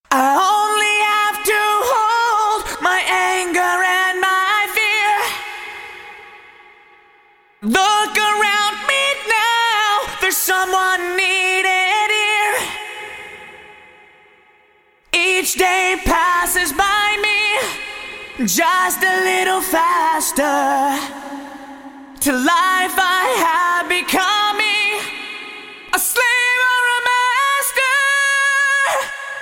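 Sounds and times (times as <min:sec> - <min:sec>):
vocals with cathedral reverb: 0:00.0 - 0:29.4.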